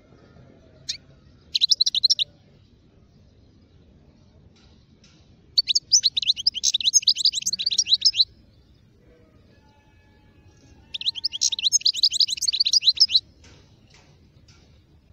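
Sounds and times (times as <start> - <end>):
wild European goldfinch giving rapid high twittering notes: 0.9 - 2.2, 5.6 - 8.3, 10.9 - 13.2.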